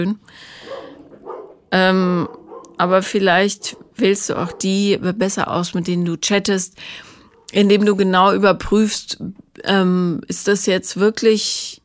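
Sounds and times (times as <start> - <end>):
speech: 0.0 - 0.6, 1.7 - 11.8
dog barking: 0.6 - 2.8, 3.6 - 4.9.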